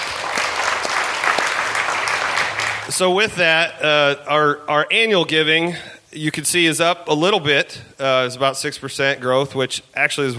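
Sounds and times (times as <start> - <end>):
church congregation clapping: 0.0 - 3.3
speech: 3.0 - 10.3.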